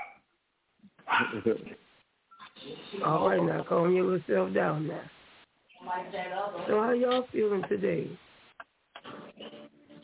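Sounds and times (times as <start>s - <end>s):
person imitating a dog with a bark-like howl: 1.1s - 1.5s
speech: 1.3s - 1.9s, 2.6s - 5.2s, 5.9s - 8.2s.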